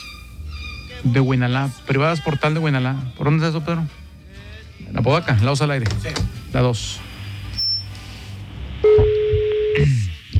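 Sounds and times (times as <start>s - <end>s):
speech: 1.0s - 4.0s, 4.8s - 7.0s
brief high beep: 7.6s - 7.9s, 8.8s - 9.8s.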